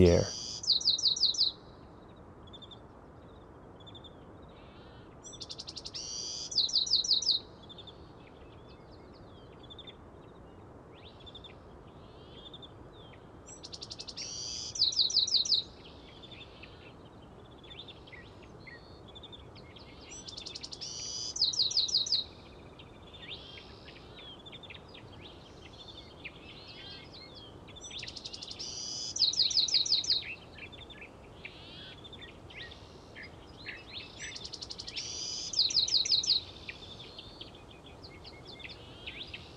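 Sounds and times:
speech: 0.0s - 0.4s
Bewick's wren singing buzzy trilled phrases at dawn: 0.0s - 1.5s, 6.5s - 7.4s, 13.6s - 15.7s, 20.1s - 22.3s, 23.2s - 39.5s
other birds in the dawn chorus: 0.0s - 39.5s.

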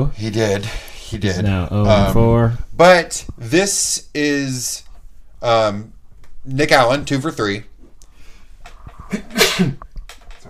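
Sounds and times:
speech: 0.0s - 4.8s, 5.4s - 7.7s, 9.1s - 9.9s
loud sneeze: 9.2s - 9.8s.

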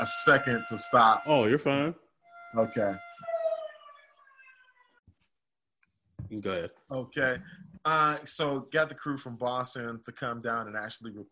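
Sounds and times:
speech: 0.0s - 3.1s, 6.3s - 11.3s
outdoor siren wailing to honor medical workers during COVID: 0.0s - 5.1s.

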